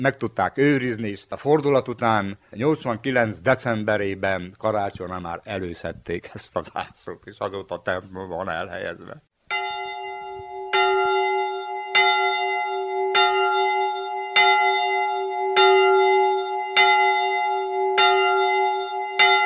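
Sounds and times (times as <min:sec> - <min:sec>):
speech: 0:00.0 - 0:09.3
small village church bell tolling: 0:09.5 - 0:19.4.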